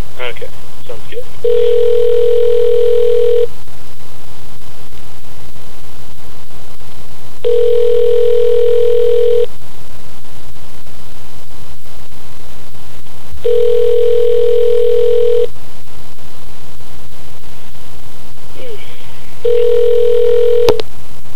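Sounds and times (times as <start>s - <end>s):
speech: 0.2s - 2.4s
ringback of a call placed to a payphone: 1.4s - 3.5s, 7.4s - 9.5s, 13.4s - 15.5s, 19.4s - 20.8s.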